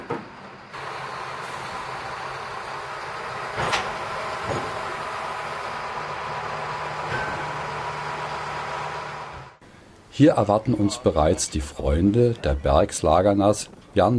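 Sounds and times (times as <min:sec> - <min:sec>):
metallic clanks and knocks from coupled train wagons: 0:00.0 - 0:09.5
shunting tractor engine drone and mechanical rumble: 0:00.0 - 0:09.7
speech: 0:10.2 - 0:14.1.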